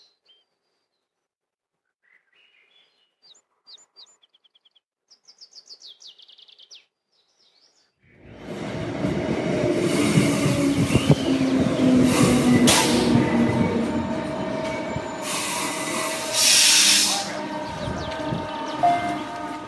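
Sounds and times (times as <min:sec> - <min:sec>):
train rolling along the rails: 0:08.2 - 0:19.6
train wheels squealing and hissing: 0:08.3 - 0:19.6.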